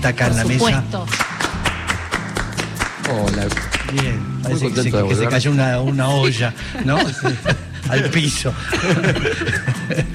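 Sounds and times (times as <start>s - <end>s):
speech: 0.0s - 1.6s, 3.1s - 10.1s
studio audience applause for a seated guest: 1.1s - 4.1s
laughter: 5.1s - 10.1s.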